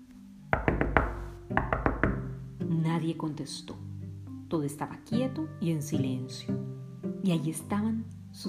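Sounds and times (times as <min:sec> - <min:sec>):
firm hollow knocks on a door: 0:00.5 - 0:02.4
speech: 0:02.9 - 0:03.9, 0:04.5 - 0:08.4.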